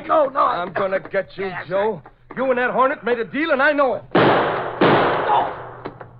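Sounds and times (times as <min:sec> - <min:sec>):
speech: 0:00.1 - 0:04.6, 0:05.3 - 0:05.6
gas-gun shot: 0:04.1 - 0:06.0.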